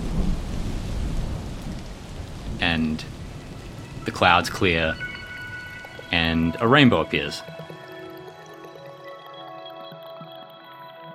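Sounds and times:
deep rolling thunder rumble: 0.0s - 5.8s
heavy rain in a thunderstorm: 0.0s - 8.5s
speech: 2.7s - 3.2s, 4.0s - 5.1s, 6.1s - 7.6s.

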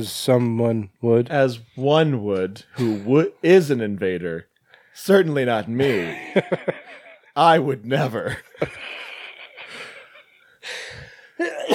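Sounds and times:
speech: 0.0s - 6.8s, 7.4s - 9.0s
raspy wheezing cough: 2.8s - 3.1s, 11.4s - 11.7s
laughter: 5.8s - 7.4s, 8.0s - 10.5s
strained breaths: 8.8s - 11.4s.

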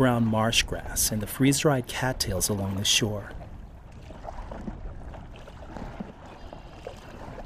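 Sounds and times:
speech: 0.0s - 3.4s
constant low wash of wind: 0.0s - 7.4s
lake water swishing and sloshing: 0.0s - 7.4s
stand-up paddleboard paddle blade sweeping through lake water: 2.1s - 7.4s.

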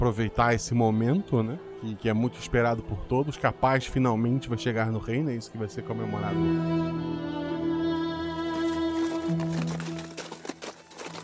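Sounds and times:
speech: 0.0s - 7.3s
horse hooves clip-clopping on a hard road: 8.6s - 11.2s.

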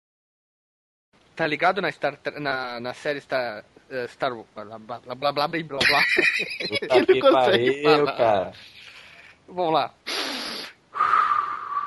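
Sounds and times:
speech: 1.4s - 8.8s, 9.5s - 10.2s
laughter: 5.8s - 8.3s
congested nose sniffling from a person with the flu: 8.6s - 9.4s, 10.1s - 10.8s.

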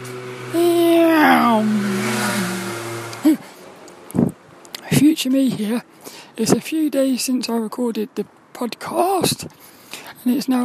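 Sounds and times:
motorbike passing by: 0.0s - 3.6s
speech: 5.2s - 10.6s.

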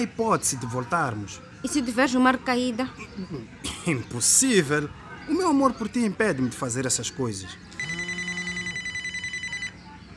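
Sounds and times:
speech: 0.0s - 7.9s
telephone ringing with an electronic trill: 7.7s - 9.9s.

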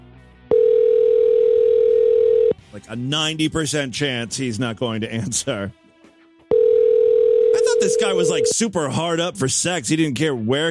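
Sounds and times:
telephone dial tone when calling back: 0.5s - 2.6s, 6.5s - 8.5s
speech: 2.9s - 5.8s, 7.8s - 10.6s.

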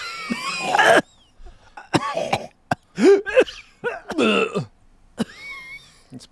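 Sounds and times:
long raspy throat-clearing hack: 0.0s - 1.1s, 1.7s - 4.7s
deliberate acted theatrical coughing: 0.0s - 5.8s.

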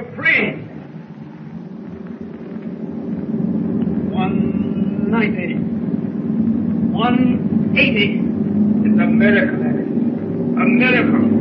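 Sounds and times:
submarine engine drone with motors at full speed: 0.0s - 11.3s
quick rising whistling tones: 3.7s - 6.3s
speech: 5.2s - 5.8s, 7.1s - 8.3s, 9.0s - 9.8s, 10.6s - 11.3s.

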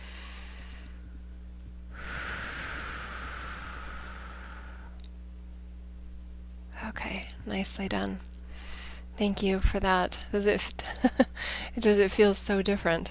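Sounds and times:
slow deep breath: 0.0s - 1.0s, 1.9s - 5.0s, 8.5s - 9.1s
low steady hum: 0.0s - 13.1s
speech: 7.0s - 8.3s, 9.2s - 13.1s.

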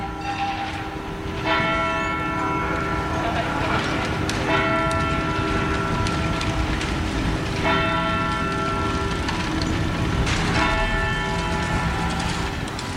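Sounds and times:
clock tower bell striking in an old town: 0.0s - 12.9s
steady hum of outdoor city noise in Bern Switzerland: 0.0s - 12.9s.

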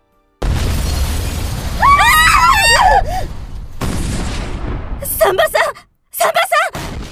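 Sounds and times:
artillery shell exploding beside beds in a maternity hospital in Paris: 0.4s - 5.0s, 6.8s - 7.1s
crash of debris from shell explosion: 0.4s - 5.0s.

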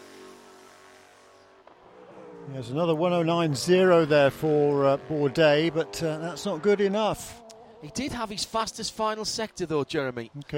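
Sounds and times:
race car engine droning past: 0.0s - 8.8s
speech: 2.5s - 10.5s.

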